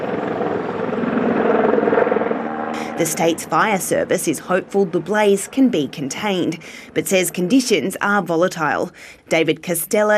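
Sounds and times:
water bombing helicopter flying over a bushfire, rotor throb: 0.0s - 10.1s
speech: 3.0s - 10.1s.

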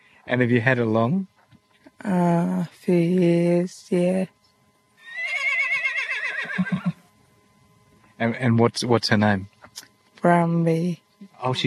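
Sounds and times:
speech: 0.2s - 1.3s, 2.0s - 4.4s, 6.6s - 7.0s, 8.2s - 11.6s
horse whinnying: 5.0s - 7.0s.

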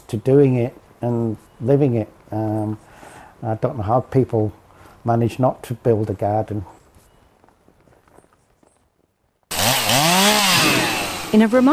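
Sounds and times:
speech: 0.1s - 6.8s, 11.3s - 11.7s
chainsaw revving while cutting dead wood: 9.5s - 11.7s.

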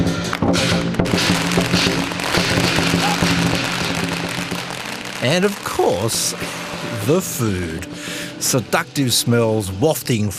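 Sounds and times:
firecrackers snapping and popping on a busy street during Lunar New Year celebrations: 0.0s - 8.4s
loud crowd noise: 1.4s - 8.8s
speech: 5.2s - 10.3s.

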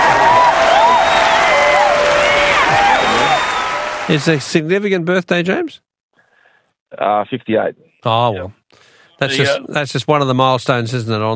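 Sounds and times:
crowd clapping: 0.0s - 4.6s
whoops and whistles from the crowd: 0.4s - 3.8s
speech: 4.1s - 5.8s, 6.9s - 11.3s.

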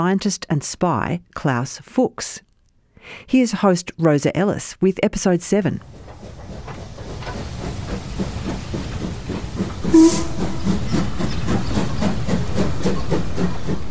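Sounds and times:
speech: 0.0s - 6.6s, 9.9s - 10.4s
steam locomotive chuffing into a station: 5.8s - 13.9s
steam locomotive whistle: 9.9s - 10.9s.

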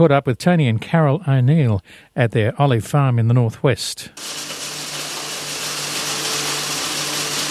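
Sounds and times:
speech: 0.0s - 4.4s
olive press hammer mill crushing olives: 4.2s - 7.4s.

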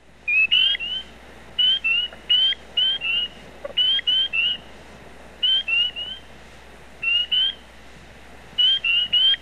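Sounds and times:
soft hiss: 0.0s - 9.3s
chorus of spring peeper frogs peeping: 0.3s - 4.8s, 5.4s - 6.3s, 7.0s - 7.7s, 8.6s - 9.3s.

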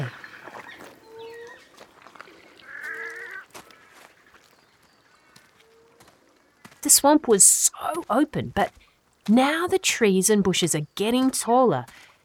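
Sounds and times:
wood ducks calling: 0.0s - 6.0s
speech: 6.8s - 12.1s.

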